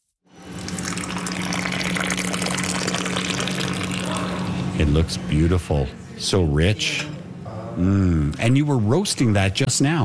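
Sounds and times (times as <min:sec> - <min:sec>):
freshly roasted Ethiopian coffee pouring into a cup at a store: 0:00.4 - 0:04.5
speech: 0:04.8 - 0:07.1, 0:07.8 - 0:10.0.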